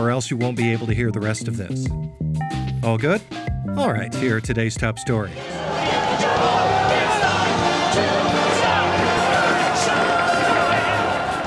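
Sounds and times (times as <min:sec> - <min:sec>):
speech: 0:00.0 - 0:06.7
overlapping voices of protesting demonstrators: 0:03.0 - 0:11.4
hundreds of cane-wielding demonstrators protesting in the streets of New York: 0:05.4 - 0:11.4.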